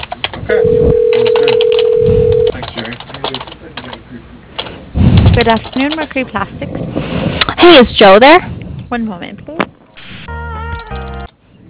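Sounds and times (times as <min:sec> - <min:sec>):
speech: 0:00.5 - 0:01.1, 0:05.5 - 0:09.4
telephone line tone while dialing an automated phone menu: 0:00.5 - 0:02.6.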